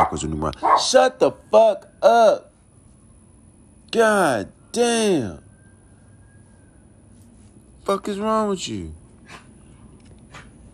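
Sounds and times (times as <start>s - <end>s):
dogs barking: 0.0s - 1.1s, 9.2s - 10.7s
speech: 0.0s - 2.5s, 3.9s - 5.4s, 7.9s - 9.4s.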